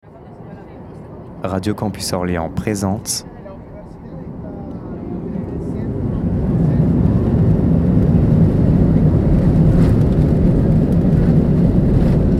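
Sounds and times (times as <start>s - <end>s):
airplane taking off, engine roaring: 0.1s - 12.3s
speech: 1.4s - 3.3s
wind noise: 5.0s - 12.3s.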